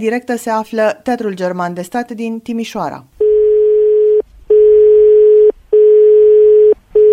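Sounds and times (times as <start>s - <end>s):
speech: 0.0s - 3.1s
telephone ringing tone on an unanswered call in Timișoara Romania: 3.2s - 7.1s.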